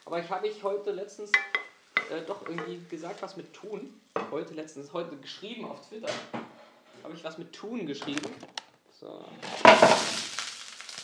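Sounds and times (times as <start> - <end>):
potato pancakes frying in hot oil in a pan: 0.0 - 4.3, 9.4 - 11.0
speech: 0.1 - 10.2.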